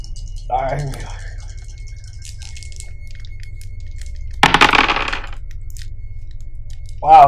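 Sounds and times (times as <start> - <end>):
speech: 0.5 - 1.2, 7.0 - 7.2
dice clattering and rattling across a hard surface: 4.4 - 5.4.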